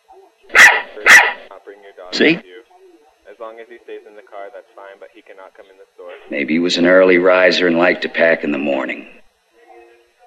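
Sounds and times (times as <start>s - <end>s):
dog barking: 0.5s - 1.5s
speech: 1.7s - 2.6s, 3.4s - 9.3s.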